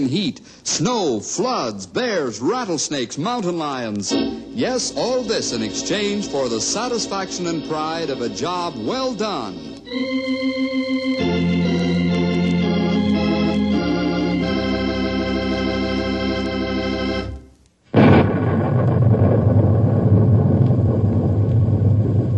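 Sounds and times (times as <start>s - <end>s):
speech: 0.0s - 11.0s
loud broad thunder rumbling: 4.1s - 9.7s, 17.9s - 22.3s
sustained musical tones: 4.1s - 17.5s.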